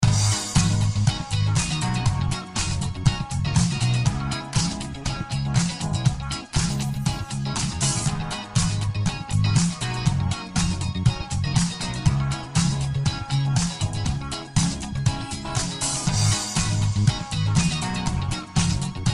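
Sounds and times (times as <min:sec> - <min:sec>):
background music: 0:00.0 - 0:19.1.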